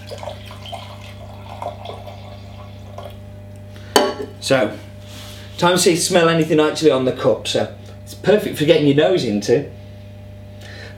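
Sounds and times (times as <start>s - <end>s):
liquid pouring into a bucket: 0.0s - 3.2s
speech: 4.4s - 4.9s, 5.6s - 9.8s.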